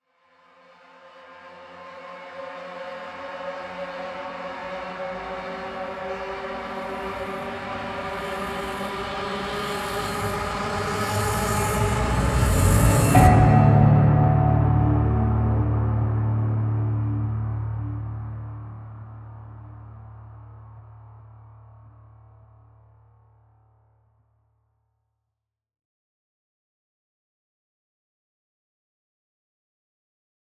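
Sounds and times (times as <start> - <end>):
long distorted guitar rise and hit: 8.1 - 18.5.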